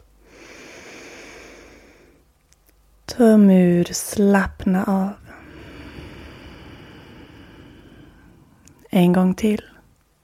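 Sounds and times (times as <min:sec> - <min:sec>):
long deep inhale through the nose during a breathing exercise: 0:00.2 - 0:02.3, 0:05.3 - 0:08.8
speech: 0:03.2 - 0:05.2, 0:08.9 - 0:09.7.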